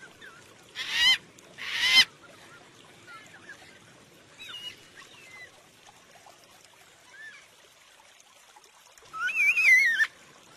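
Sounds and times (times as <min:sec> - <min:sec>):
yellow-tailed black cockatoo harsh harmonic squawks: 0:00.8 - 0:02.1.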